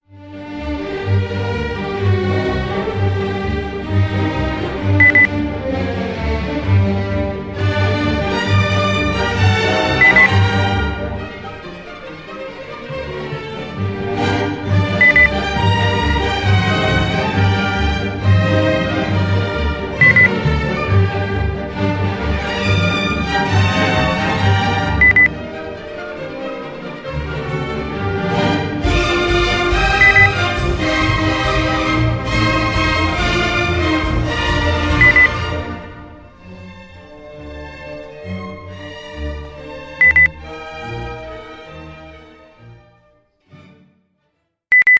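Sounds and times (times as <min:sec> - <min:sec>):
classical music: 0:00.0 - 0:44.7.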